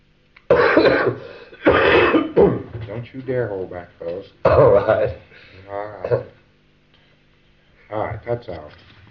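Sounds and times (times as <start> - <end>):
person coughing harshly: 0.5 - 2.7, 4.4 - 5.2, 6.0 - 6.4
speech: 0.8 - 6.4, 7.9 - 9.0.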